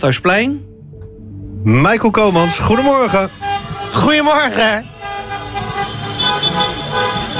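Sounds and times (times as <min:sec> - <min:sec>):
speech: 0:00.0 - 0:00.7, 0:01.6 - 0:04.9
traffic rumble: 0:00.0 - 0:07.3
many car horns honking in celebration in a noisy street: 0:02.1 - 0:07.3.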